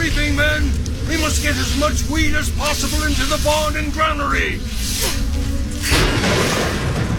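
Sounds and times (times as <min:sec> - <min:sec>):
speech: 0:00.1 - 0:05.2
thunder from a lightning strike as a storm rolls in over a wheat harvest: 0:05.9 - 0:07.1.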